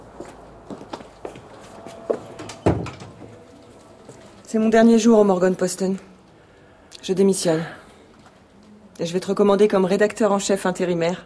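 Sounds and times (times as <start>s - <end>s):
shuffling footsteps: 0.0s - 5.5s
door pushed shut with a solid thud: 2.4s - 3.4s
speech: 4.5s - 6.1s, 7.1s - 7.8s, 9.0s - 11.2s.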